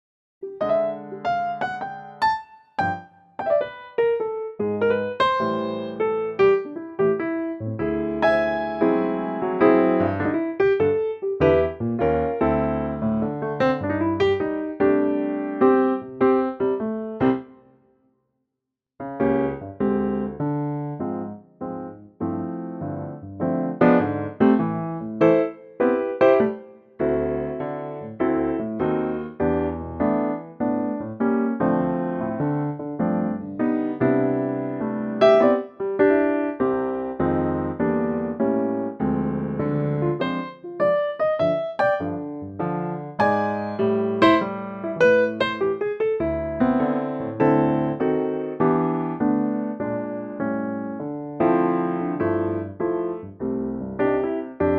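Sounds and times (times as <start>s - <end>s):
piano piece in C: 0.4s - 17.8s, 19.0s - 54.7s.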